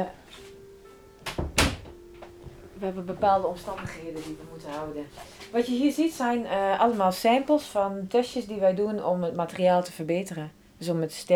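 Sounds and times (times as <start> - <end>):
speech: 0.0 - 0.4, 2.8 - 11.3
faint steady hum: 0.0 - 11.3
door being pulled shut with a soft thud: 1.2 - 2.4.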